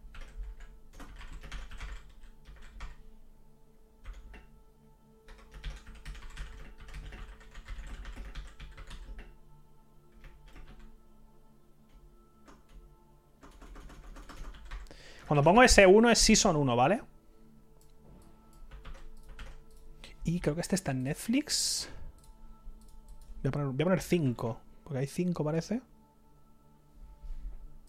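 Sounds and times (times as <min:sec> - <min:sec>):
typing a new poll on a computer keyboard: 0:00.0 - 0:03.0, 0:04.0 - 0:04.5, 0:05.3 - 0:09.4, 0:10.1 - 0:10.9, 0:13.4 - 0:14.9, 0:18.5 - 0:19.9
speech: 0:15.3 - 0:17.1, 0:20.4 - 0:22.0, 0:23.4 - 0:25.9.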